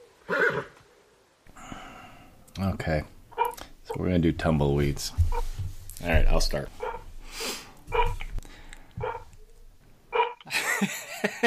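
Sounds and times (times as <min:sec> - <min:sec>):
speech: 0:02.6 - 0:03.2, 0:03.9 - 0:06.8
dog barking: 0:06.8 - 0:07.1, 0:07.9 - 0:08.2, 0:09.0 - 0:09.3
laughter: 0:10.5 - 0:11.4.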